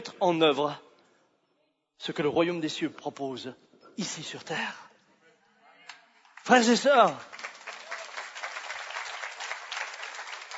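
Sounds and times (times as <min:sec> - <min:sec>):
speech: 0:00.0 - 0:00.8, 0:02.0 - 0:04.8, 0:06.4 - 0:07.4
congregation applauding during a religious service: 0:06.2 - 0:10.5.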